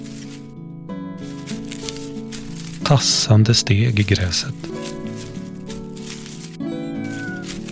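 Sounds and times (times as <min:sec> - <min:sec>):
speech: 0:02.9 - 0:04.9
cat meowing in long drawn-out wails: 0:06.6 - 0:07.7.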